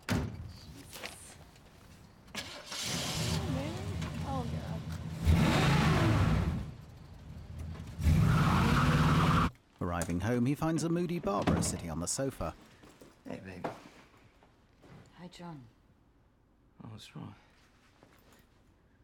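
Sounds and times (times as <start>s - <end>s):
car engine starting, revving and pulling away: 2.6s - 9.5s
speech: 10.1s - 12.7s, 13.3s - 13.8s, 15.3s - 15.8s, 17.0s - 17.4s.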